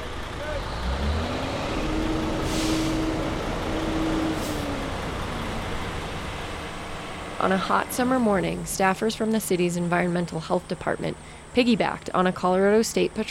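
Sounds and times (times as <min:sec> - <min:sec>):
heavy trucks rumbling at a roadside stop: 0:00.0 - 0:13.3
traffic noise: 0:00.0 - 0:13.3
air brakes hissing: 0:02.2 - 0:03.4, 0:04.1 - 0:04.9
speech: 0:07.4 - 0:13.3.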